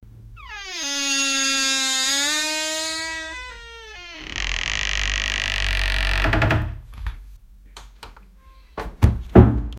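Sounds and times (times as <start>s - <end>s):
old door creaking open: 0.4s - 6.8s.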